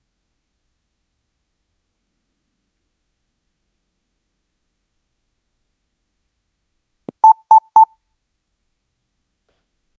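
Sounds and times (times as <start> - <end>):
iPhone message notification: 7.1 - 7.9.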